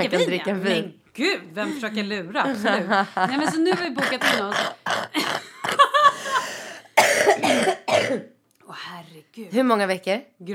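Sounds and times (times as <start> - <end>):
speech: 0.0 - 5.8, 7.3 - 10.5
laughter: 2.5 - 4.5, 5.2 - 6.6
harsh coughing: 3.6 - 8.4.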